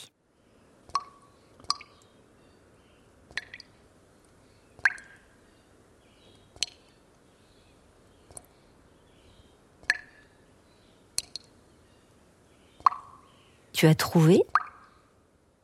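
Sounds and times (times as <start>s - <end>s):
water drops falling into a box: 3.3s - 3.7s, 4.8s - 5.2s, 9.8s - 10.2s, 11.2s - 11.5s, 12.8s - 13.1s
speech: 13.8s - 14.5s.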